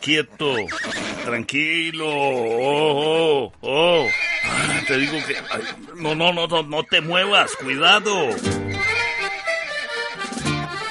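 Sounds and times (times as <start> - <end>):
speech: 0.0 - 8.8
agitated horse neighing with a shrill whinny: 0.4 - 1.4, 3.6 - 9.8.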